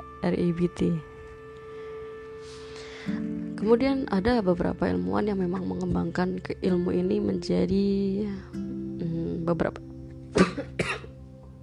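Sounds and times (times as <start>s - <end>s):
speech: 0.2s - 1.1s, 2.4s - 8.8s, 9.5s - 9.9s
slight cough: 10.3s - 11.1s.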